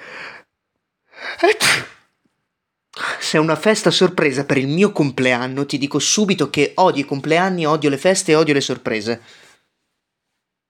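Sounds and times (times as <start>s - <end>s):
person sneezing: 1.2s - 2.1s
speech: 1.4s - 1.9s, 3.3s - 9.5s.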